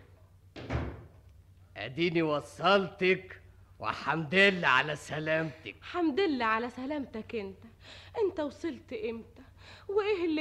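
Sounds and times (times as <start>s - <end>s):
door shutting with wood and latch noise: 0.6s - 1.2s
speech: 1.8s - 10.3s.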